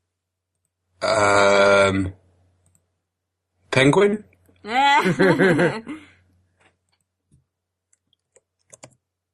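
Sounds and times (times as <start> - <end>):
speech: 1.0 - 2.2, 3.8 - 6.0
person laughing: 4.7 - 6.1
typing on a computer keyboard: 7.9 - 9.0.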